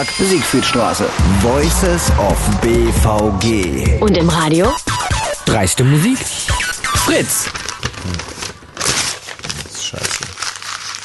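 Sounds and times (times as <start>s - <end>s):
speech: 0.0s - 8.4s
paper crinkling and crumpling: 6.6s - 11.0s.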